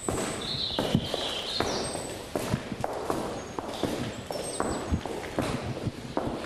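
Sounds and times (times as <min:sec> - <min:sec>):
faint birdsong chirping: 0:00.0 - 0:02.4, 0:03.2 - 0:05.0
farmer's footsteps on concrete in an empty milking parlour on a dairy farm in Limerick: 0:00.0 - 0:06.4.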